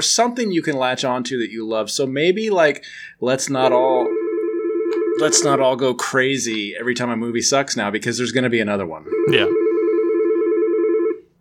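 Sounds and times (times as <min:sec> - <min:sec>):
speech: 0:00.0 - 0:04.2, 0:05.2 - 0:09.6
telephone ringing with an electronic warbling trill: 0:04.0 - 0:05.8, 0:09.1 - 0:11.3.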